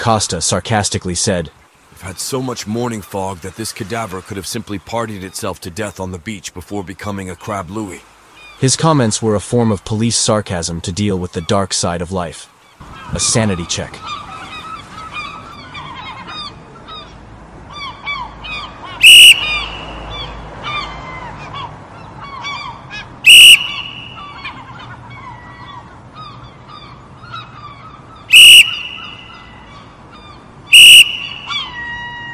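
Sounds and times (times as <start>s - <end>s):
speech: 0.0s - 14.2s
seagulls squawking and crying: 2.0s - 6.1s, 12.7s - 32.3s
loud sharp whistle blasts: 19.0s - 20.2s, 23.2s - 24.6s, 28.3s - 29.6s, 30.7s - 32.3s.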